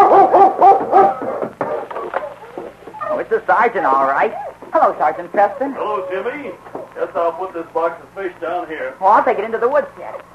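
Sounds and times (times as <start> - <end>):
dog barking: 0.0 - 1.3
speech: 3.6 - 10.3.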